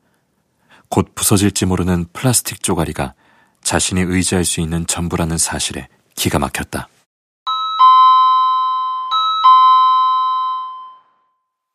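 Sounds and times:
speech: 1.0 - 7.0
two-tone electronic doorbell chime at an apartment: 7.5 - 11.7.

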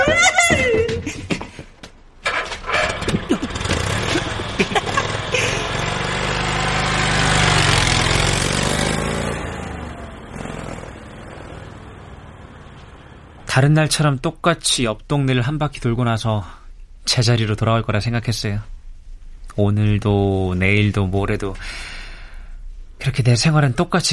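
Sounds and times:
speech: 0.1 - 0.6, 13.6 - 18.7, 19.6 - 22.0, 23.0 - 24.1
scooter engine idling in a fried chicken restaurant: 2.3 - 13.4
voice-like laughter: 3.1 - 5.9.

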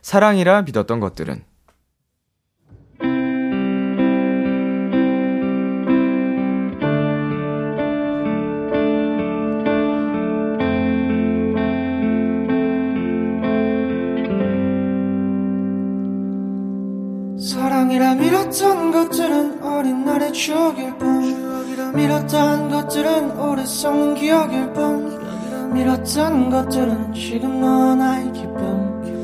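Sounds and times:
speech: 0.0 - 1.5, 18.5 - 28.8
sustained effect-laden electric guitar chords in a live performance: 2.7 - 29.2.

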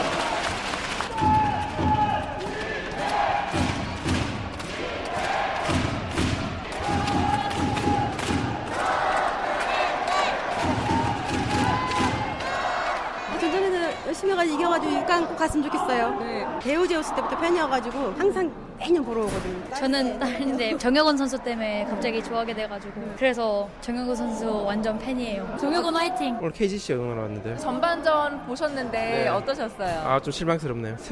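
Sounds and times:
large crowd of basketball fans clapping and cheering at a basketball game: 0.0 - 14.3
basketball fans shouting and chattering: 1.1 - 19.8, 20.9 - 26.4
speech: 15.4 - 31.1.

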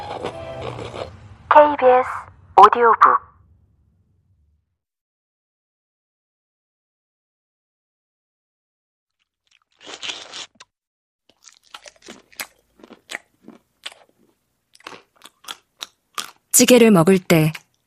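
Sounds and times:
speech: 1.6 - 3.2, 16.6 - 17.6
slurp: 9.1 - 12.3
wet open-mouthed chewing of rice: 9.1 - 16.5, 17.5 - 17.8.

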